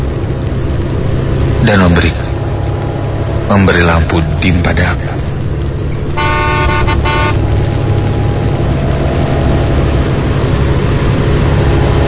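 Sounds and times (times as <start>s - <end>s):
loud steady rumble of engine and traffic: 0.0s - 12.0s
speech: 1.6s - 2.3s, 3.5s - 5.4s
minibus horn honking at a motorcycle on the road: 6.2s - 7.9s.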